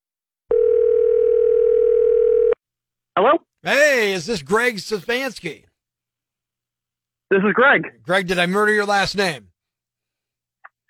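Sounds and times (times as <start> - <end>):
steady telephone dial tone: 0.5 - 2.6
speech: 3.2 - 5.7, 7.3 - 9.5.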